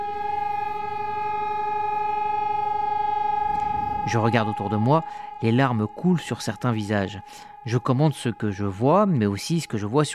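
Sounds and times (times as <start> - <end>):
memorial siren wailing at one steady pitch: 0.0 - 10.1
faint low rumble of noise: 2.6 - 9.9
speech: 4.1 - 10.1.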